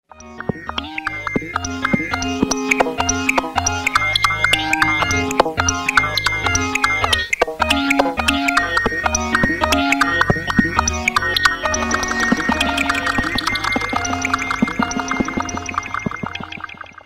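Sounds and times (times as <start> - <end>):
synthesizer: 0.1 - 17.0.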